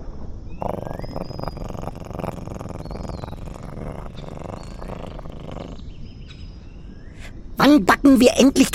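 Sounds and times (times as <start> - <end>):
soft purring: 0.6 - 6.0
speech: 7.6 - 8.7.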